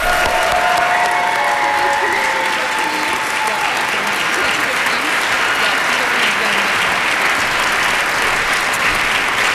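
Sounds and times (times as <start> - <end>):
audience applause from a room full of people: 0.0 - 9.5
faint voices and cheers: 0.0 - 9.5.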